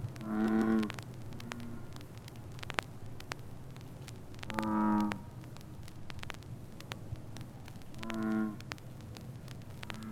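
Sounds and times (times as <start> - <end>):
faint frog croaks: 0.0 - 2.9, 4.4 - 5.6, 7.9 - 8.8, 9.7 - 10.0
crackling clicks: 0.0 - 10.0
bullfrog giving deep droning croak: 0.2 - 1.9, 4.5 - 5.3, 8.0 - 8.6, 9.8 - 10.0.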